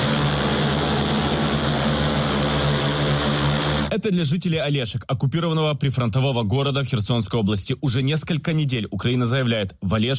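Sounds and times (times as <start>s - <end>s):
cargo drone propellers buzzing over Kherson: 0.0s - 3.9s
speech: 4.0s - 10.1s.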